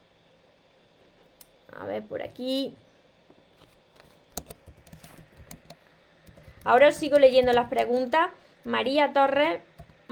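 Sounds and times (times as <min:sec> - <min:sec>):
speech: 0:01.7 - 0:02.9, 0:06.6 - 0:10.1
typing on a computer keyboard while writing a post: 0:04.4 - 0:08.0.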